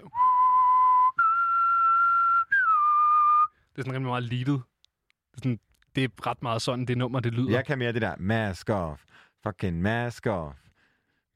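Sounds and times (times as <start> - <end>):
person whistling a tune imitating a flute line: 0.0 - 3.6
speech: 3.8 - 4.7, 5.4 - 10.6.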